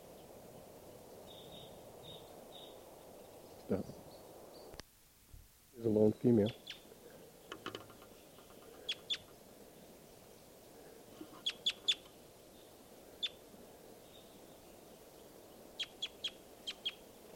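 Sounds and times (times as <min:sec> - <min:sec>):
steady low outdoor hum: 0:00.0 - 0:17.3
speech: 0:03.7 - 0:04.0, 0:05.8 - 0:06.6
sharp high-pitched bird calls: 0:07.5 - 0:09.3, 0:11.2 - 0:12.1, 0:15.8 - 0:17.1.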